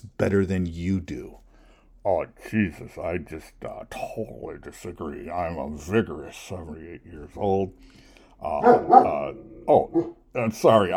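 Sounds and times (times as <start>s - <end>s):
speech: 0.2s - 1.4s, 2.0s - 10.9s
dog barking with a growly edge: 8.6s - 10.2s.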